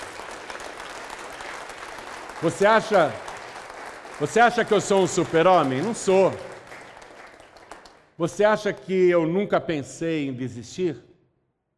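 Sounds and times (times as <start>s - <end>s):
audience applauding: 0.0s - 8.5s
speech: 2.4s - 3.2s, 4.2s - 6.5s, 8.2s - 11.1s.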